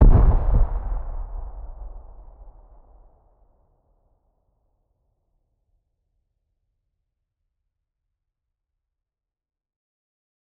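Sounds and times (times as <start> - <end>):
distant C4 explosion: 0.0 - 3.1.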